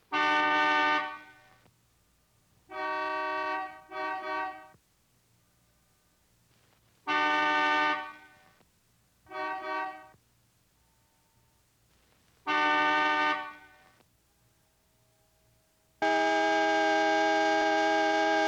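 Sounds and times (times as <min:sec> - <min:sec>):
old car horns: 0:00.1 - 0:01.7, 0:02.7 - 0:04.8, 0:07.0 - 0:08.6, 0:09.3 - 0:10.2, 0:12.4 - 0:14.0, 0:16.0 - 0:18.4.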